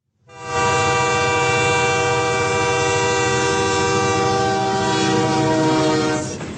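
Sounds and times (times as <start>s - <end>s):
train horn: 0.2s - 6.4s.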